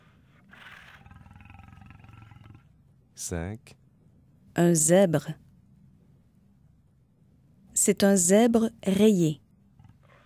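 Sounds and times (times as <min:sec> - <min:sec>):
lion roaring: 0:00.4 - 0:02.7
speech: 0:03.2 - 0:03.8, 0:04.6 - 0:05.4, 0:07.9 - 0:09.4.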